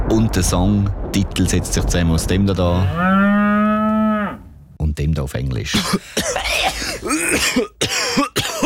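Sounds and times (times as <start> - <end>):
speech: 0.1 - 3.3, 5.0 - 8.3
harsh raspy coughing: 5.7 - 8.6.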